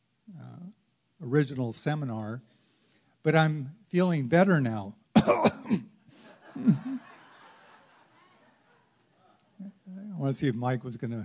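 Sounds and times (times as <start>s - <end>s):
speech: 1.2s - 2.5s, 3.2s - 5.9s, 6.6s - 7.0s, 10.2s - 11.2s
person coughing: 5.2s - 5.9s, 6.6s - 7.1s
rough throat clearing: 5.2s - 5.9s
laughter: 6.2s - 9.2s.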